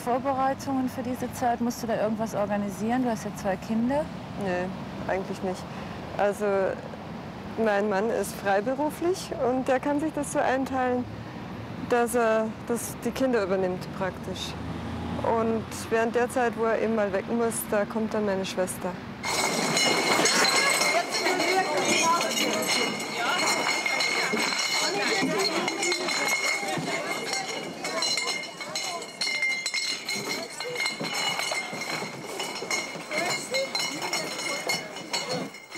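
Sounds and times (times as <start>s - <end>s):
speech: 0.0s - 6.9s, 7.6s - 11.2s, 11.8s - 14.6s, 15.2s - 19.4s
beer glasses clinking and clattering as they're put away: 19.2s - 35.7s
loud crowd hubbub with indistinct voices: 19.2s - 35.7s.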